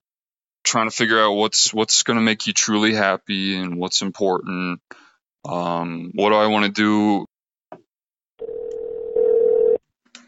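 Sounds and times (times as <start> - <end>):
speech: 0.7 - 7.3
phone line click: 8.4 - 9.8.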